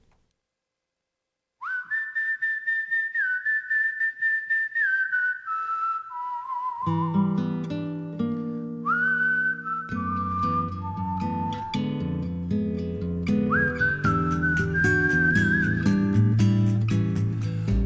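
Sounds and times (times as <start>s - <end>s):
whistled melody: 1.6s - 7.8s, 8.7s - 12.6s, 13.2s - 17.7s.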